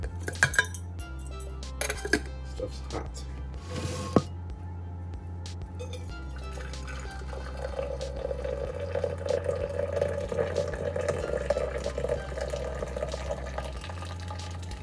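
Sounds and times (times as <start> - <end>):
low hum: 0.0 - 14.8
water pouring over ginger in a pot: 6.4 - 14.8.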